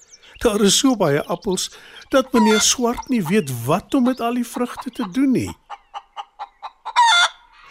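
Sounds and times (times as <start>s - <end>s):
speech: 0.4s - 5.6s
hen clucking: 0.4s - 7.7s
hen squawking harshly: 1.5s - 7.7s.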